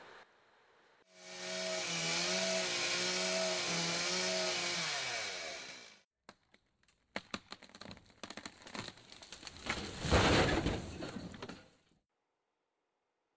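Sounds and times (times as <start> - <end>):
chainsaw cutting a tree: 1.2 - 6.0
tree wood cracking and snapping: 6.3 - 11.6
felled tree crashing down: 7.2 - 11.6.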